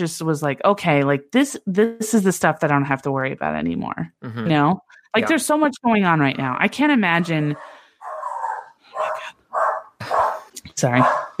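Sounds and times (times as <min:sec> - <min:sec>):
speech: 0:00.0 - 0:07.8, 0:10.8 - 0:11.3
dog barking: 0:07.4 - 0:11.3.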